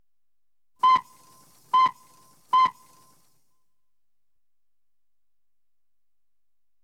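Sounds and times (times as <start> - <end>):
steam launch hooter: 0.8 - 3.3.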